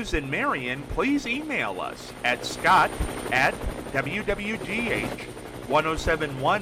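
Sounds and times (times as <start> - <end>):
news helicopter rotor noise flying overhead: 0.0 - 6.6
speech: 0.0 - 6.6.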